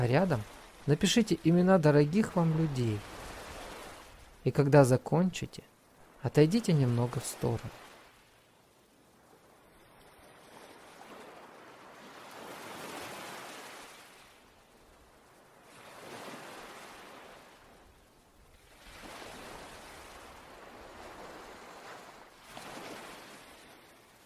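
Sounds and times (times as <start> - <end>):
speech: 0.0 - 3.1, 4.4 - 7.8
ocean waves washing onto a sandy shore: 0.0 - 24.2.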